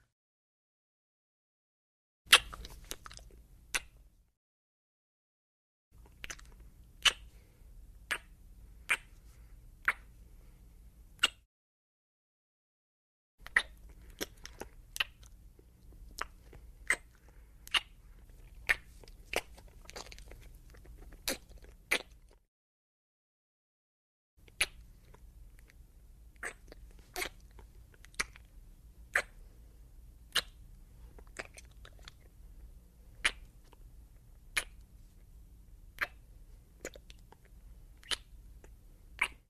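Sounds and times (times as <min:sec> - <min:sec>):
human heavy wet kissing: 0:02.3 - 0:03.1, 0:06.2 - 0:07.3, 0:08.1 - 0:09.2, 0:09.8 - 0:10.1, 0:13.4 - 0:15.2, 0:16.2 - 0:18.0, 0:18.7 - 0:22.2, 0:24.5 - 0:24.9, 0:26.4 - 0:27.5, 0:29.1 - 0:29.4, 0:30.3 - 0:30.6, 0:33.2 - 0:33.5, 0:34.6 - 0:34.8, 0:36.0 - 0:36.2, 0:38.0 - 0:38.4, 0:39.2 - 0:39.4.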